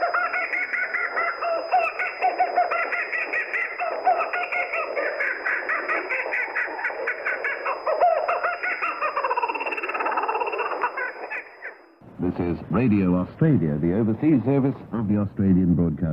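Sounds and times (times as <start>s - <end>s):
laughing kookaburra cackling over shortwave radio: 0.0s - 11.8s
speech: 12.7s - 16.1s.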